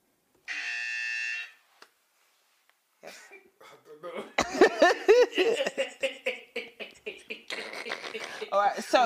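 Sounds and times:
quiz game buzzer: 0:00.5 - 0:01.6
laughter: 0:04.1 - 0:09.0.

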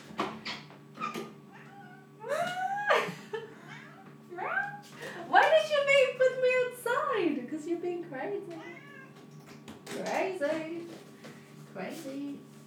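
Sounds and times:
faint steady hum: 0:00.0 - 0:12.6
cat meowing: 0:01.5 - 0:02.1, 0:08.6 - 0:09.2.

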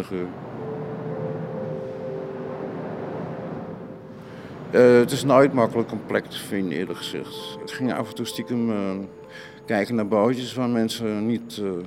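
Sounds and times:
speech: 0:00.0 - 0:00.5, 0:04.7 - 0:11.8
continuous traffic of passing cars: 0:00.0 - 0:07.6.

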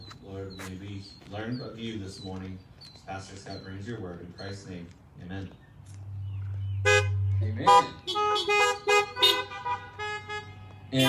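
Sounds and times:
low engine rumble: 0:00.0 - 0:10.9
speech: 0:00.7 - 0:05.6, 0:07.4 - 0:08.0
car horns honking: 0:06.8 - 0:11.0.

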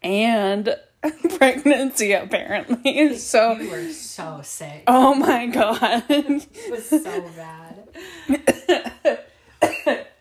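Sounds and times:
speech: 0:00.0 - 0:08.9
person coughing from laughing: 0:08.3 - 0:10.1.

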